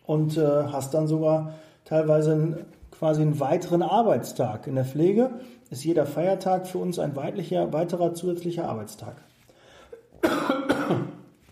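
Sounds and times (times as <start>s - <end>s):
speech: 0.1s - 9.3s
faint breathy lead-in: 1.5s - 1.9s, 5.4s - 5.7s, 9.3s - 10.1s
person with a scratchy throat coughing: 9.9s - 11.3s.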